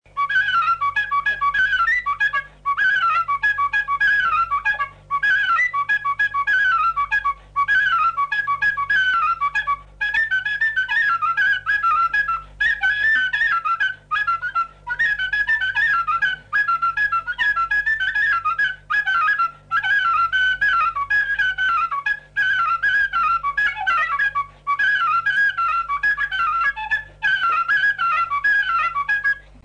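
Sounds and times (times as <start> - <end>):
fluier folk flute melody: 0.1 - 29.6.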